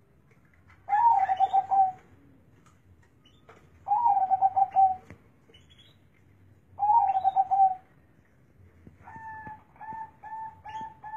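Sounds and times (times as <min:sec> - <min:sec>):
low background hum: 0:00.0 - 0:11.1
zebra dove cooing: 0:00.9 - 0:02.1, 0:03.9 - 0:05.1, 0:06.8 - 0:07.9, 0:09.0 - 0:11.1.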